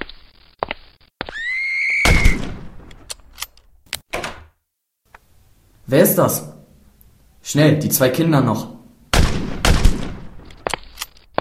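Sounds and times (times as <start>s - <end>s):
loud gunshots: 2.0s - 2.8s, 9.1s - 10.4s
fainter sharper gunshot cracks farther away: 2.1s - 2.9s, 9.1s - 10.5s
speech: 5.9s - 6.5s, 7.5s - 8.8s.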